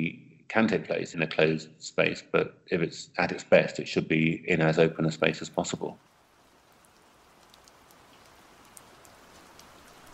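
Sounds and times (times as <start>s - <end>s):
speech: 0.0s - 6.1s
steady rain falling on a chilly November day: 5.0s - 10.1s.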